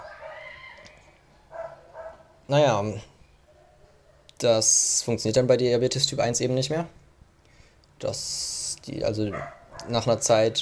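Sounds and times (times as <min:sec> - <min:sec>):
dog barking: 0:00.0 - 0:00.8, 0:01.4 - 0:02.4, 0:03.4 - 0:04.4, 0:09.3 - 0:10.2
speech: 0:02.5 - 0:03.1, 0:04.4 - 0:07.0, 0:08.0 - 0:10.6.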